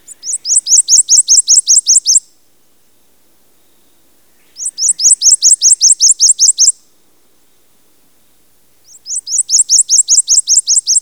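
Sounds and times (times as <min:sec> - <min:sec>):
prothonotary warbler calls: 0:00.0 - 0:02.3, 0:03.6 - 0:06.8, 0:08.8 - 0:11.0.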